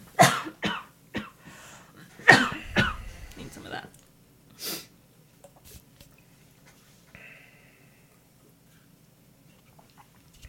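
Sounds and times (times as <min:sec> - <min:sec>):
harsh coughs: 0:00.2 - 0:01.4, 0:02.2 - 0:03.2.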